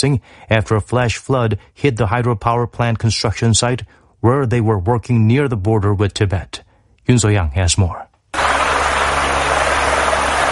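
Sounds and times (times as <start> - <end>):
speech: 0.0 - 8.6
helicopter flying over a flood-ravaged valley area in Nepal during search and rescue: 8.4 - 10.5.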